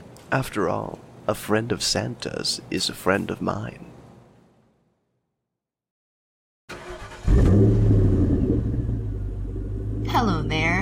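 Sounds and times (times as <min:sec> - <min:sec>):
speech: 0:00.3 - 0:03.9
car engine starting and revving: 0:06.7 - 0:10.8.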